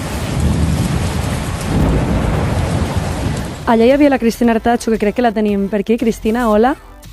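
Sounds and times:
heavy rain pouring in the Camp de Tarragona: 0.0 - 5.4
low thunder rumbling: 0.0 - 5.7
speech: 3.7 - 6.9.

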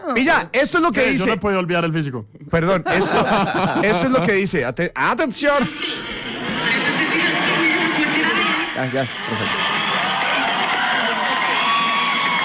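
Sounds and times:
speech: 0.1 - 6.2, 8.8 - 9.6
laughter: 2.8 - 4.6, 5.6 - 11.9
loud dense crowd shouting and cheering: 5.8 - 12.4.

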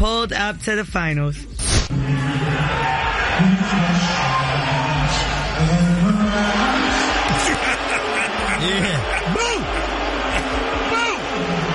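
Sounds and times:
speech: 0.0 - 4.4, 8.6 - 9.5
large stadium crowd booing at the finals: 1.9 - 11.7
laughter: 6.2 - 10.9.

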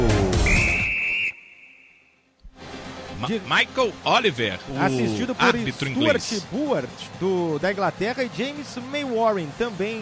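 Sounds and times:
referee's long whistle blast: 0.4 - 2.2
speech: 3.2 - 10.0.

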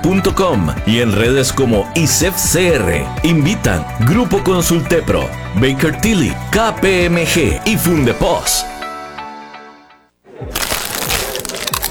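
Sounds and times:
speech: 0.0 - 8.7
tonal music: 0.0 - 10.0
crunching crispy tortilla chips: 10.4 - 11.8.

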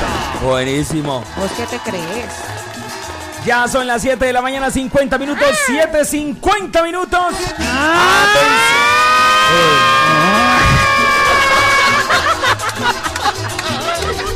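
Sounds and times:
speech: 0.4 - 2.5, 3.4 - 8.9, 9.5 - 10.5
siren sound effect wailing: 7.6 - 12.0
laughter: 7.6 - 14.3.

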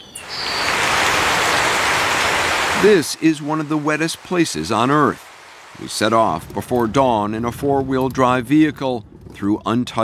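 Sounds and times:
high bird call: 0.0 - 3.1
rainforest wildlife ambience: 0.0 - 6.6
dense rain hissing through the rainforest canopy of Tatama National Park in the Andes: 0.0 - 6.9
speech: 2.8 - 10.0.

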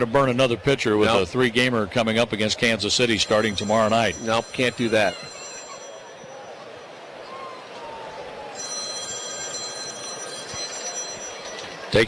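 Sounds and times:
speech: 0.0 - 5.3
constant roar of crowd noise: 0.0 - 12.0
telephone bell ringing: 3.2 - 6.8, 8.4 - 12.0.

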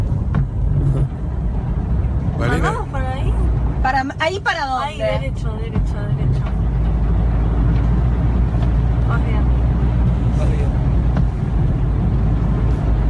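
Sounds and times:
Renault 4 car engine churning through flood water and stalling: 0.0 - 13.0
speech: 4.1 - 6.3, 9.1 - 9.4.

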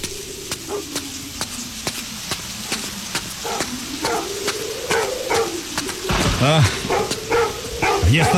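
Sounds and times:
dog barking and whining at a grave: 3.4 - 4.3, 4.9 - 5.6, 6.9 - 8.3
speech: 6.4 - 6.8, 8.1 - 8.3.

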